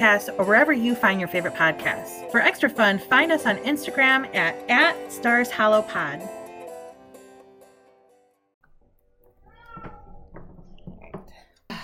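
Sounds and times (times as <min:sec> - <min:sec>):
speech: 0:00.0 - 0:06.4
cat meowing: 0:09.4 - 0:10.3.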